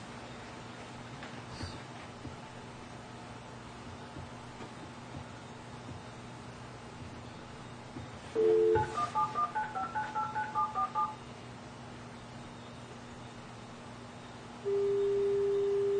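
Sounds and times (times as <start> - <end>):
telephone line hiss: 8.3 - 11.2, 14.6 - 15.9
steady telephone line tone: 8.4 - 11.2, 14.6 - 15.9
telephone keypad dialing tones: 8.4 - 11.2.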